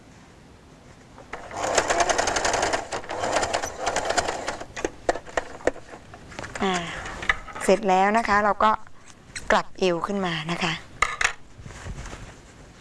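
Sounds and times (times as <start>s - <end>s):
sewing machine stitching along a zipper: 1.2s - 6.0s
speech: 7.7s - 8.9s, 9.5s - 10.9s.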